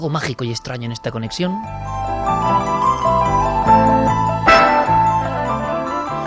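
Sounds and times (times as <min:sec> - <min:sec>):
speech: 0:00.0 - 0:02.9
eerie horror film theme music of piano and tubular bells: 0:01.6 - 0:06.2
bright bell strike: 0:04.1 - 0:06.2.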